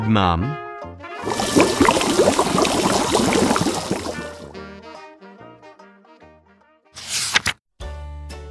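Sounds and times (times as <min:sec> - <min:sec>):
speech: 0:00.1 - 0:00.6
water gushing and splashing into a paddling pool in a garden: 0:01.2 - 0:04.7.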